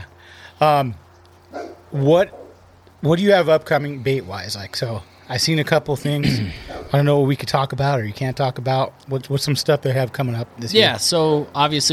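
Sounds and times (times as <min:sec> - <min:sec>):
speech: 0:00.6 - 0:01.0, 0:01.9 - 0:02.4, 0:03.0 - 0:11.9
high-pitched dog bark in a backyard: 0:01.5 - 0:02.6.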